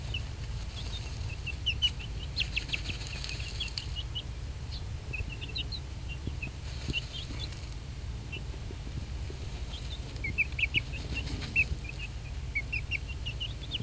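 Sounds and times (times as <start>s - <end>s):
one-month-old Silky chicks peeping: 0.0s - 13.8s
steady low outdoor rumble: 0.0s - 13.8s.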